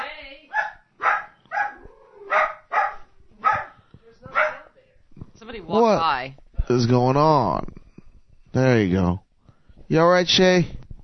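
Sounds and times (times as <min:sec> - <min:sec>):
dog barking: 0:00.5 - 0:04.7
speech: 0:05.6 - 0:07.8, 0:08.6 - 0:09.2, 0:09.9 - 0:10.8.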